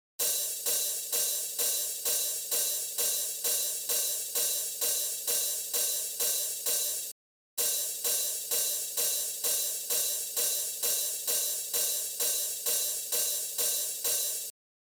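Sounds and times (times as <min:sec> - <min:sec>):
hi-hat: 0:00.2 - 0:14.6.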